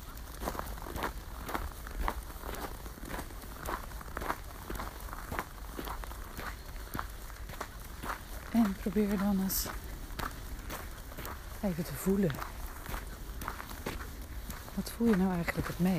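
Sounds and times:
footsteps walking outdoors: 0.0 - 15.9
speech: 8.6 - 9.8, 11.6 - 12.6, 14.8 - 15.9.

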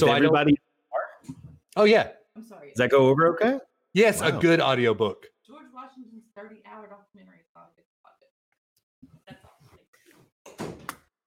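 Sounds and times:
voices: 0.0 - 0.6, 4.0 - 5.1
speech: 0.0 - 5.3
door slamming shut: 10.5 - 11.0.

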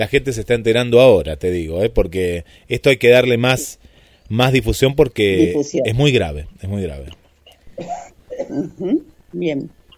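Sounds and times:
speech: 0.0 - 7.2, 7.8 - 9.8
person with a long-standing cough coughing: 7.8 - 8.7.

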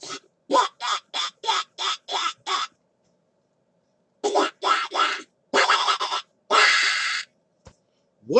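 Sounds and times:
man imitating duck quacks: 0.0 - 2.7, 4.2 - 7.2.

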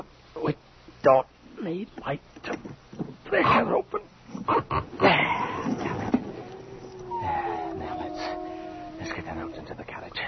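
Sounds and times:
low hiss: 0.0 - 10.2
speech: 0.5 - 2.7, 3.3 - 5.1, 9.4 - 10.2
dogs whimpering in the rain: 5.1 - 9.8
dogs barking in the rain: 6.2 - 9.7.

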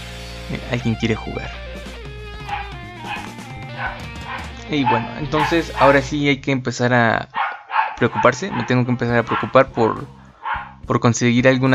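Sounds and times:
speech: 0.5 - 1.9, 3.8 - 7.4, 8.0 - 10.2, 10.9 - 11.7
dog barking and yipping: 2.4 - 6.1, 7.3 - 10.8.

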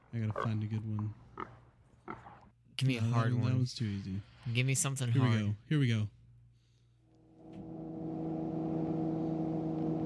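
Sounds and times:
speech: 0.1 - 6.2
helicopter engine droning: 7.3 - 10.0.

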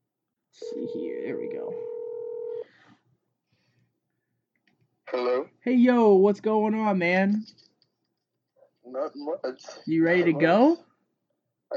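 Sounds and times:
speech: 0.6 - 2.0, 5.1 - 7.6, 8.9 - 10.9
telephone dialing tone placing a call: 0.6 - 2.6.

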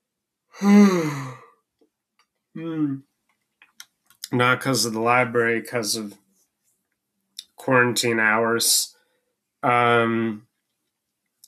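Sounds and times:
speech: 0.6 - 1.2, 2.7 - 3.1, 4.3 - 6.2, 7.6 - 9.0, 9.6 - 10.5
quiet groaning exhale: 0.6 - 1.4
long drawn-out yawn: 0.6 - 1.5.

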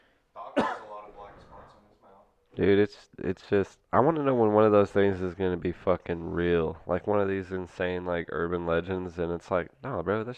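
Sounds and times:
person coughing directly into the microphone: 0.6 - 1.1
speech: 2.6 - 10.3.

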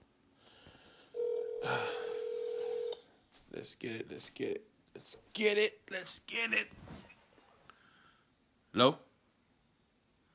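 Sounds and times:
telephone dialing tone: 1.2 - 3.0
speech: 3.6 - 7.0, 8.8 - 9.1.

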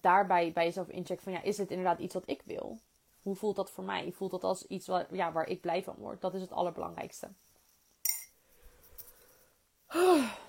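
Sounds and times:
speech: 0.0 - 7.5, 9.9 - 10.4
bright clink: 8.0 - 8.4
person yawning: 9.9 - 10.4.

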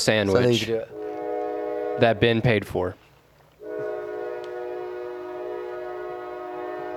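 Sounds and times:
speech: 0.0 - 1.0, 2.0 - 3.0
passing train horn blast: 0.2 - 3.0, 3.6 - 6.9.

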